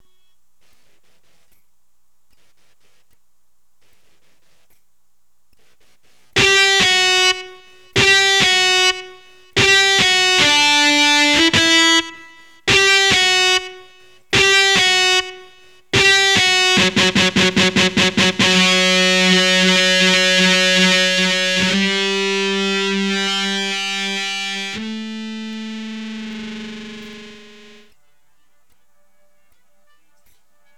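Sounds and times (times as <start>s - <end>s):
electric guitar line: 6.4s - 27.9s.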